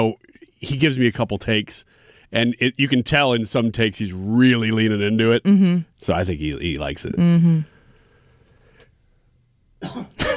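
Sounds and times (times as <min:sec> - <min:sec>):
speech: 0:00.0 - 0:07.7, 0:09.8 - 0:10.3
throaty cough: 0:09.8 - 0:10.3.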